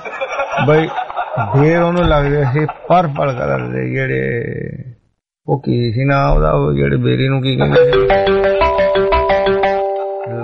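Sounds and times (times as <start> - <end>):
laughter: 0.0 - 4.3
speech: 0.6 - 4.9, 5.5 - 8.7
telephone ringing with a melodic electronic ringtone: 7.7 - 10.3.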